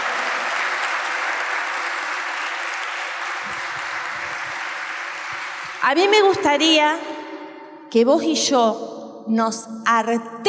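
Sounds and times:
large crowd applauding: 0.0s - 6.1s
speech: 5.8s - 7.1s, 7.9s - 10.4s.

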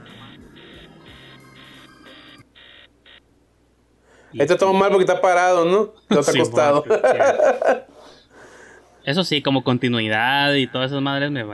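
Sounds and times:
alarm beeping with short electronic tones: 0.0s - 3.2s
speech: 4.3s - 7.9s, 9.0s - 11.5s
laughter: 6.1s - 7.9s.

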